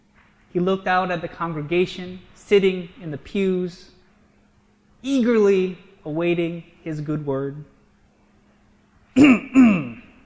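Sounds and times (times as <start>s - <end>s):
speech: 0.5s - 4.0s, 5.0s - 7.7s
man clearing his throat in church: 9.2s - 10.2s.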